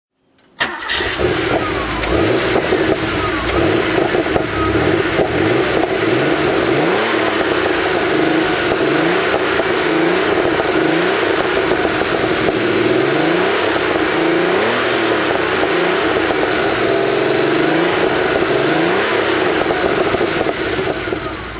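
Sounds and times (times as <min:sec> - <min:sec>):
Porsche 911 Turbo engine throttle: 0:00.5 - 0:21.5.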